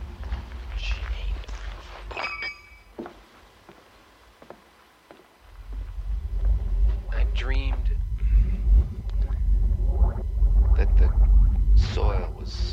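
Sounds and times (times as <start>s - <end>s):
low rumbling background: 0.0s - 2.1s, 5.4s - 12.7s
soft footsteps walking along a sidewalk: 0.0s - 9.3s.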